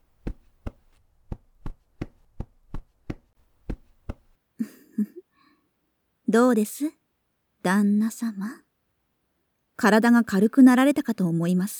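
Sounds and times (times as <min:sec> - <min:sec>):
rhythmic tapping massage on the body: 0:00.2 - 0:04.4
speech: 0:05.0 - 0:05.2, 0:06.3 - 0:07.0, 0:07.6 - 0:08.6, 0:09.8 - 0:11.7.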